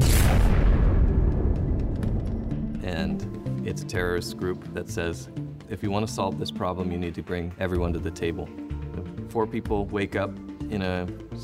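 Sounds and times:
rocket exploding on the launch pad: 0:00.0 - 0:02.6
speech: 0:03.7 - 0:08.6, 0:09.3 - 0:11.4.

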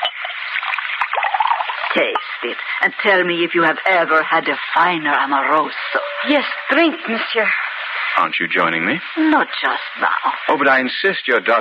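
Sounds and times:
wine pouring into a glass: 0:00.0 - 0:02.8
speech: 0:02.0 - 0:07.6, 0:08.2 - 0:11.5.

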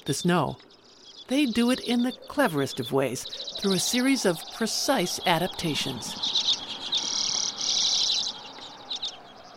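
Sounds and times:
speech: 0:00.0 - 0:06.6
common redpoll buzzy rasping calls: 0:00.7 - 0:09.5.

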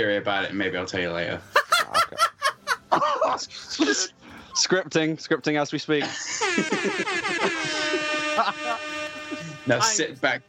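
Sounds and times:
speech: 0:00.0 - 0:02.3, 0:03.0 - 0:07.8, 0:08.4 - 0:10.4
laughter: 0:01.5 - 0:04.2, 0:06.0 - 0:10.0
loud brassy air horn blaring: 0:06.4 - 0:10.4.

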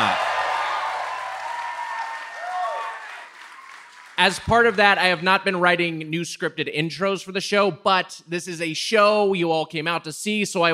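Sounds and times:
scattered whoops from audience: 0:00.0 - 0:03.8
live audience applause: 0:00.0 - 0:04.8
speech: 0:04.2 - 0:10.7.

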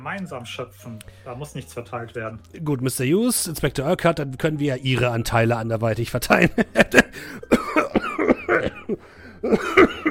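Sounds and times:
speech: 0:00.0 - 0:07.5, 0:08.5 - 0:10.0
man coughing: 0:07.0 - 0:10.0.

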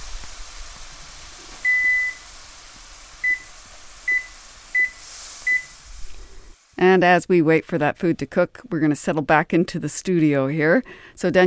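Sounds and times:
kitchen timer beeping as it is started: 0:01.7 - 0:02.2, 0:03.2 - 0:03.5, 0:04.1 - 0:05.7
speech: 0:06.8 - 0:11.4.

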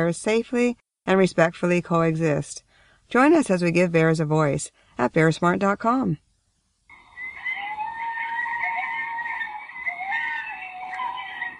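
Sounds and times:
speech: 0:00.0 - 0:06.2
coyotes howling in chorus: 0:06.9 - 0:11.5.

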